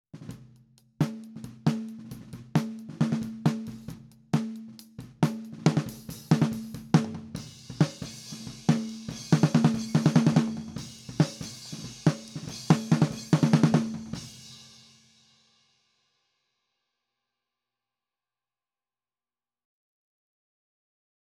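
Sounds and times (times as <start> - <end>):
snare drum recorded with top microphone: 0.2 - 14.5.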